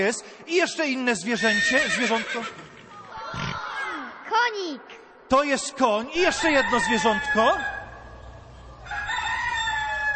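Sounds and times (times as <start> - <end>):
speech: 0.0 - 2.7, 4.5 - 7.7
rooster crowing: 6.3 - 8.2, 8.8 - 10.1.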